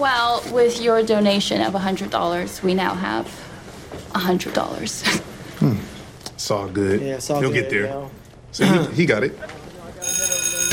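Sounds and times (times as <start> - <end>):
speech: 0.0 - 3.5, 4.1 - 9.6
school bell ringing to call students to class: 10.0 - 10.7.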